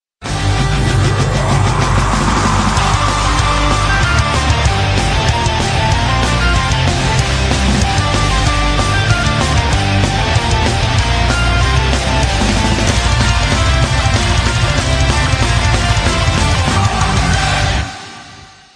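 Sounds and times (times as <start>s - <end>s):
folk metal music: 0.2s - 18.2s.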